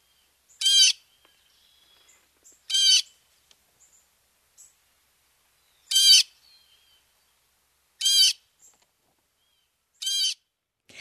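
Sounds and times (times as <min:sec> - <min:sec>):
Canadian blue jay calls in winter: 0:00.0 - 0:03.2, 0:05.8 - 0:07.0, 0:08.0 - 0:08.8, 0:09.4 - 0:10.5.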